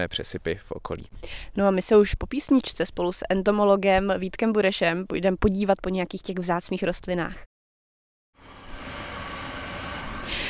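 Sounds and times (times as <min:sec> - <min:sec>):
speech: 0:00.0 - 0:07.5
passing train rumbling on railway at Čeperka in East Bohemia: 0:08.4 - 0:10.4.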